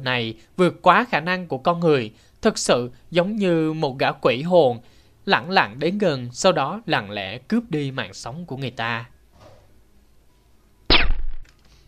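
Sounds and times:
speech: 0.0 - 9.1
gunshot from a suppressed gun: 10.9 - 11.4.

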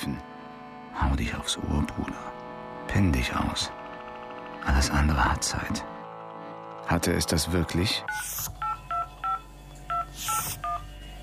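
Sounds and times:
speech: 1.0 - 3.8, 4.6 - 5.9, 6.9 - 8.5
touch-tone beeps dialing a call on a telephone keypad: 8.1 - 10.8.

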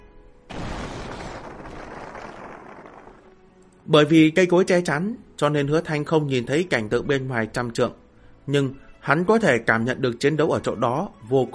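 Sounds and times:
distant violent explosion: 0.5 - 3.6
speech: 3.9 - 11.5.

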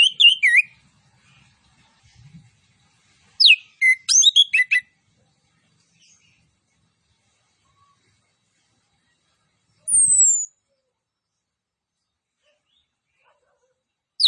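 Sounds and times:
Orange-headed thrush song of high varied whistles and chirps: 0.0 - 0.8, 3.4 - 4.9, 9.8 - 10.6.

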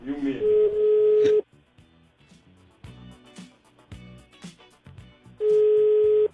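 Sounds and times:
unanswered telephone call's ringback tone: 0.4 - 1.4, 5.4 - 6.3.

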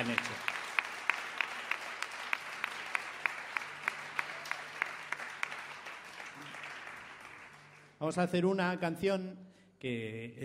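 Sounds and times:
audience applause at a religious evening vigil: 0.0 - 8.0
speech: 8.0 - 10.4.

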